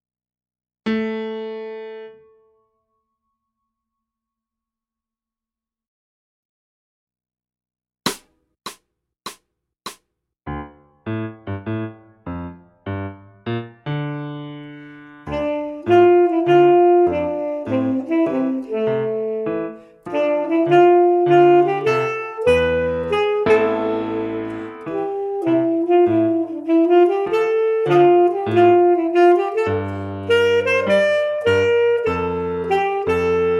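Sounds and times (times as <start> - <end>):
jazz tenor saxophone: 14.7 - 33.5.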